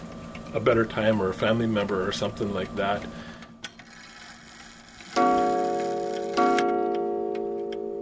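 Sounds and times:
speech: 0.5s - 3.3s
resonant metallic clock strikes: 5.2s - 8.0s.

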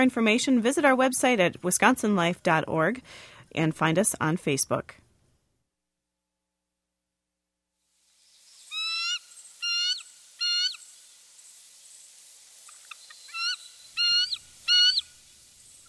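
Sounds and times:
speech: 0.0s - 5.0s
bald eagle peal call: 8.7s - 10.8s, 12.9s - 15.2s.

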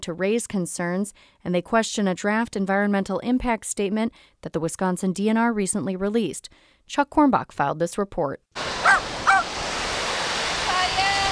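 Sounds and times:
speech: 0.0s - 8.8s
waves rolling onto a Lake Michigan beach: 8.6s - 11.2s
sharp bird calls: 8.8s - 9.5s.

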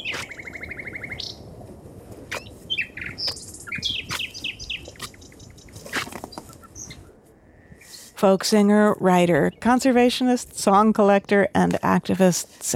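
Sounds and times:
nightingale singing: 0.0s - 1.5s, 2.3s - 7.1s
speech: 8.2s - 12.7s.

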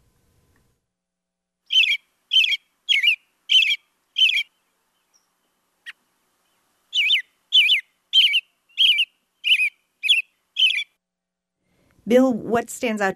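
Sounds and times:
American robin singing: 1.6s - 11.0s
speech: 12.1s - 13.1s.

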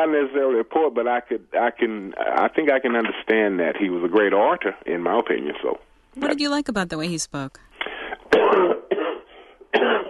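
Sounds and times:
speech: 0.0s - 7.7s
person breathing: 7.6s - 8.3s, 9.3s - 9.6s
person coughing: 8.3s - 10.0s.

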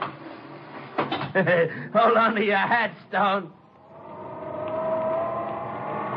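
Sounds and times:
elevator in a 35-storey building climbing fast toward the roof: 0.0s - 6.1s
speech: 1.3s - 3.6s
thin tonal whine of elevator: 3.5s - 6.1s.

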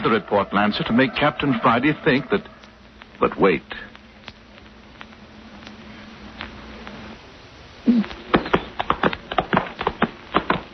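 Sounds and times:
speech: 0.0s - 2.6s, 3.2s - 3.9s
low hum: 0.0s - 10.7s
horse hooves clip-clopping as a horse is ridden toward a creek: 8.2s - 10.7s.

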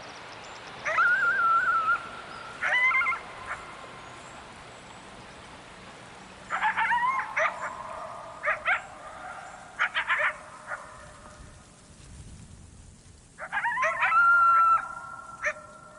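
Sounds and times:
coyotes howling and yipping with echoes across hills: 0.8s - 4.5s, 6.4s - 11.4s, 13.4s - 15.9s.

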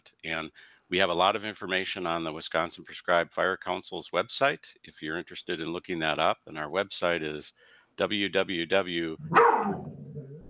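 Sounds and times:
speech: 0.2s - 10.0s
dog growling: 9.2s - 10.4s
dog barking: 9.3s - 9.9s.

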